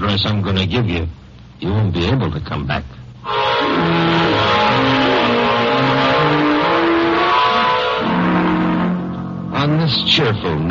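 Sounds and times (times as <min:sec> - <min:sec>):
speech: 0:00.0 - 0:05.0, 0:09.6 - 0:10.6
car engine driving off and revving: 0:03.6 - 0:09.3.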